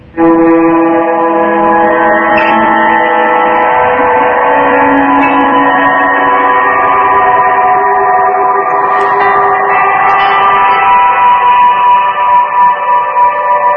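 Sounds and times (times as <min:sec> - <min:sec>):
guitar drone through delay and pitch-shifting reverb amp patch: 0:00.0 - 0:13.7.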